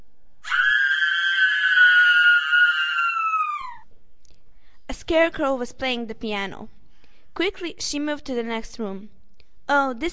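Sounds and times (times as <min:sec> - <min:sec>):
girl screaming high-pitched: 0:00.4 - 0:03.8
speech: 0:05.1 - 0:06.8, 0:07.4 - 0:10.1.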